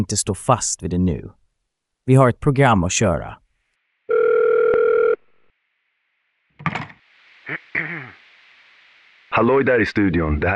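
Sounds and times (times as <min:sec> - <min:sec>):
speech: 0:00.0 - 0:01.4, 0:02.1 - 0:03.4, 0:06.6 - 0:06.9, 0:09.4 - 0:10.5
electronic telephone ring: 0:04.1 - 0:05.2
receiver being picked up: 0:06.6 - 0:07.0.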